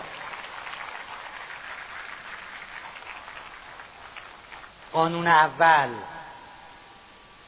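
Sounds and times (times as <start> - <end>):
crowd applauding: 0.0 - 4.9
speech: 4.9 - 6.1.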